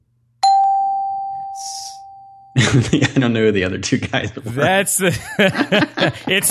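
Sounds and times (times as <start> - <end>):
bright electronic chime for a correct quiz answer: 0.4 - 2.6
laughter: 2.6 - 3.3, 4.0 - 6.4
speech: 2.6 - 6.4.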